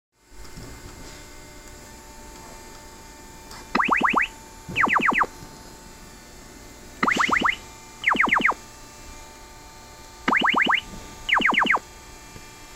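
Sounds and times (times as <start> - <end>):
Cisco IP phone laser ringtone: 3.8 - 5.3, 7.0 - 8.6, 10.3 - 11.8.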